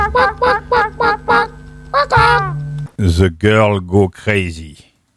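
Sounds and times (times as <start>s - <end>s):
chicken clucking: 0.2s - 2.6s
speech: 3.1s - 4.9s.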